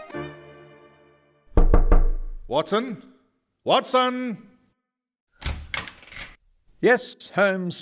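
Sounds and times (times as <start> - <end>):
firm knocks on a wooden bedroom door: 1.6 - 2.5
speech: 2.5 - 3.1, 3.7 - 4.5, 6.8 - 7.7.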